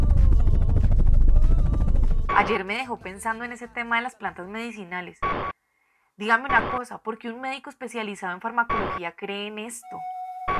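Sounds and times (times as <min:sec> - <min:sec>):
helicopter flying with rotor chopping: 0:00.0 - 0:02.6
speech: 0:02.4 - 0:05.5, 0:06.2 - 0:10.2.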